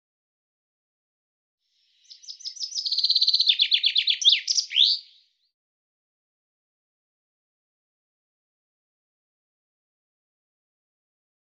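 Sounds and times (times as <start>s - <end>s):
common chaffinch song: 1.8s - 5.6s.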